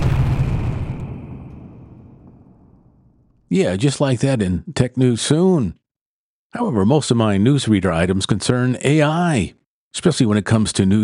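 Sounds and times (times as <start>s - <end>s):
loud deep booming explosion: 0.0s - 3.3s
speech: 3.5s - 5.8s, 6.5s - 11.0s.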